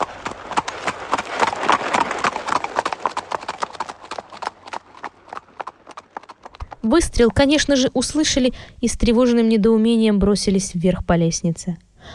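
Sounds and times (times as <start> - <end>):
horse galloping away with clip-clop hoofbeats: 0.0 - 8.4
speech: 6.8 - 12.1.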